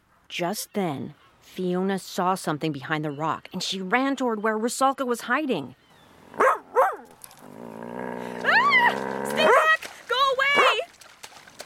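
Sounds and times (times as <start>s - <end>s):
speech: 0.3s - 6.5s
voice imitating a dog barking, growling and yelping: 8.2s - 9.6s.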